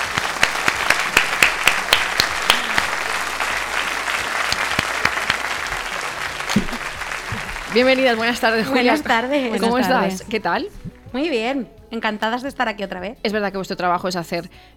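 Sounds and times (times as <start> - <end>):
audience applause: 0.0 - 9.5
speech: 7.7 - 14.7.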